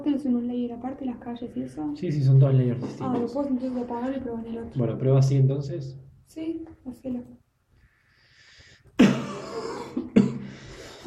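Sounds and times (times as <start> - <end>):
speech: 0.1 - 7.4
short raspy coughs: 9.0 - 10.6.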